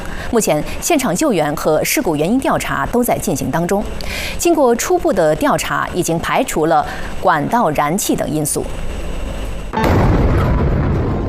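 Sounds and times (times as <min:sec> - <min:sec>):
speech: 0:00.3 - 0:08.9, 0:09.8 - 0:10.0
loud explosion boom: 0:09.7 - 0:11.2
sustained rumbling roar of low-frequency noise: 0:09.8 - 0:11.2.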